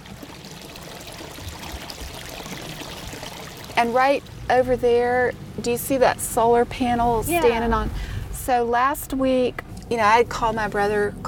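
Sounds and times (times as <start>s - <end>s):
creek water flowing and babbling: 0.0s - 8.4s
speech: 3.8s - 11.2s.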